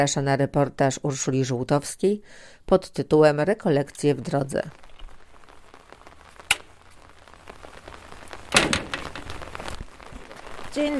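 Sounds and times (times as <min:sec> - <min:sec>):
speech: 0:00.0 - 0:04.9, 0:10.8 - 0:10.9
steady rain pattering: 0:02.3 - 0:10.9.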